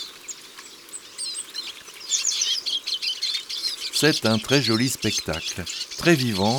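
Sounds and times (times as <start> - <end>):
flock of Eurasian siskins chirping: 0.0 - 6.5
speech: 4.0 - 6.5.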